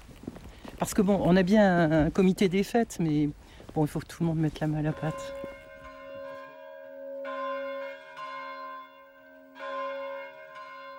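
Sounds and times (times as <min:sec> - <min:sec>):
speech: 0:00.8 - 0:05.4
hand-rung church bell ringing: 0:04.7 - 0:10.9.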